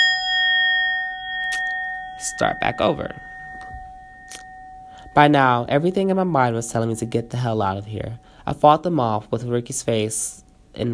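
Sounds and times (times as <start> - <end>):
bell ringing: 0.0 - 8.7
speech: 2.2 - 3.3, 5.2 - 10.9.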